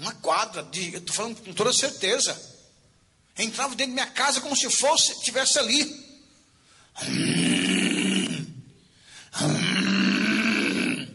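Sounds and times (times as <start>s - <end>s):
speech: 0.1s - 2.6s, 3.4s - 6.1s, 7.0s - 7.8s
human voice imitating a neighbour's loud lion-like snoring: 7.0s - 8.6s, 9.4s - 11.1s.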